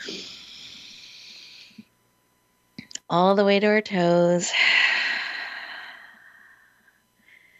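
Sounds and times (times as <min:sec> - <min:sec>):
long steady nasal inhale with an airy hiss: 0:00.1 - 0:01.9, 0:04.5 - 0:07.5
speech: 0:03.1 - 0:04.9.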